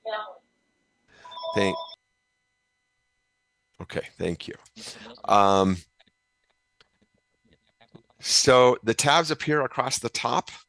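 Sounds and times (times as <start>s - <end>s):
phone ringing during an online meeting: 1.2s - 2.0s
speech: 1.5s - 1.8s, 3.8s - 5.9s, 8.2s - 10.6s.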